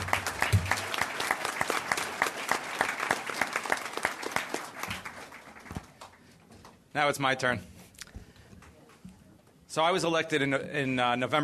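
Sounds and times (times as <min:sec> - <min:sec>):
room full of people applauding: 0:00.0 - 0:06.3
speech: 0:07.0 - 0:07.7, 0:09.8 - 0:11.4.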